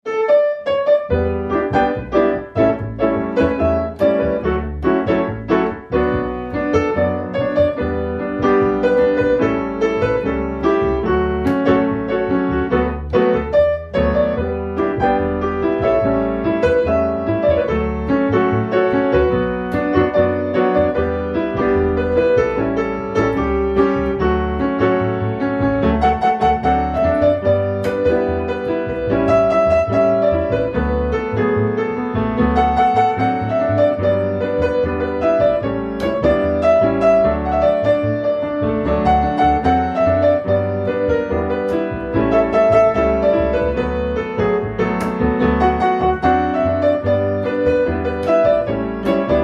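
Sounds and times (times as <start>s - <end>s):
piano: 0.0s - 49.4s
double bass: 1.1s - 49.4s.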